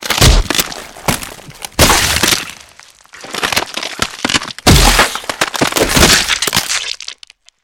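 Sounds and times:
punches and kicks hitting: 0:00.0 - 0:02.5, 0:04.6 - 0:06.4
bones breaking: 0:00.0 - 0:07.6.

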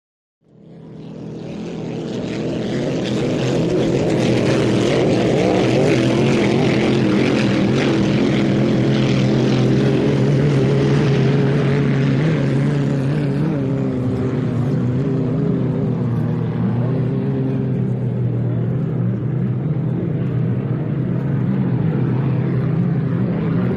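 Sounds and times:
motorboats racing: 0:00.4 - 0:23.7.

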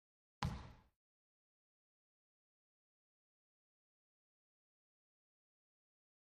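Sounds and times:
racquetball bouncing: 0:00.4 - 0:00.9.

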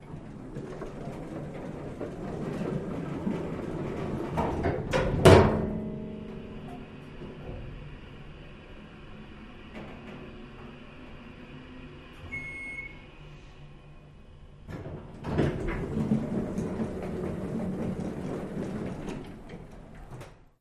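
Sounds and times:
elevator door closing: 0:00.0 - 0:08.2, 0:12.1 - 0:13.2, 0:14.6 - 0:20.5.

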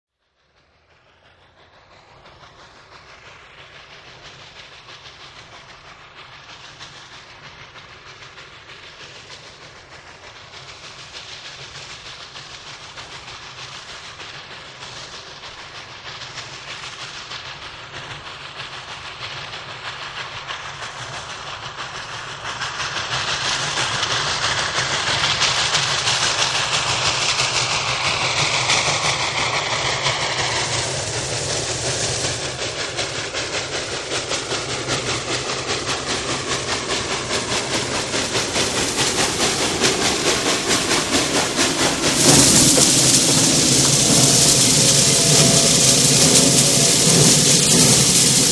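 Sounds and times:
steam train stopping: 0:01.0 - 0:48.4.

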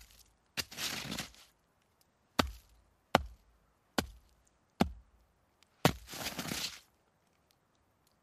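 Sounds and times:
ice scraping: 0:00.6 - 0:01.5, 0:05.9 - 0:06.9.

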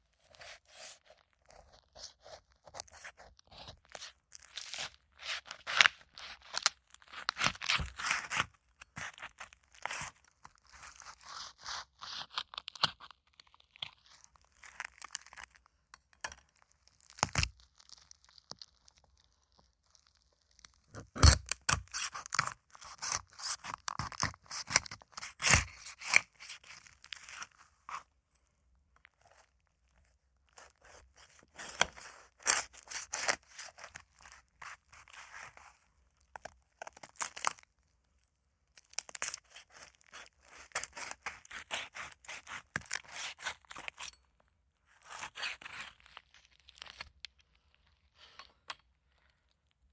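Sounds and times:
meat being cut and ripped from bones: 0:01.4 - 0:15.6, 0:16.3 - 0:19.3, 0:20.6 - 0:27.6, 0:30.5 - 0:35.6, 0:36.4 - 0:37.6, 0:38.8 - 0:44.2, 0:45.0 - 0:47.3.

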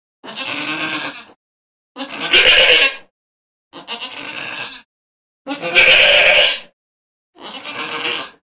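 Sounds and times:
goats bleating: 0:00.2 - 0:01.4, 0:02.0 - 0:03.0, 0:03.8 - 0:04.8, 0:05.5 - 0:06.7, 0:07.4 - 0:08.4.

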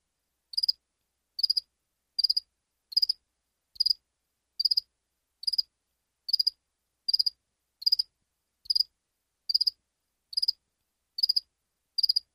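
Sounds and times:
cricket chirping: 0:00.5 - 0:00.8, 0:01.4 - 0:03.2, 0:03.8 - 0:04.0, 0:04.6 - 0:05.7, 0:06.3 - 0:08.1, 0:08.7 - 0:08.9, 0:09.5 - 0:10.6, 0:11.2 - 0:12.3.

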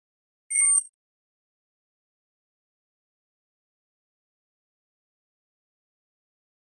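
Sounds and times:
electronic flash beep: 0:00.5 - 0:00.9.

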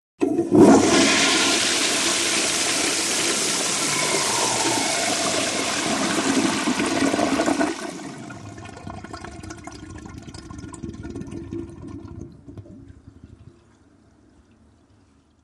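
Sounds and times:
modern low tank toilet flushing: 0:00.2 - 0:12.6.

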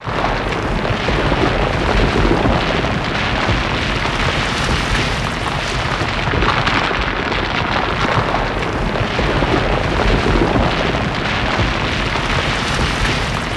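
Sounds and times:
avalanche rock slide: 0:00.0 - 0:13.5.

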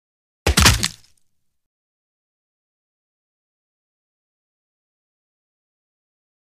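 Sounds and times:
hard wet bone crunch: 0:00.5 - 0:01.1.

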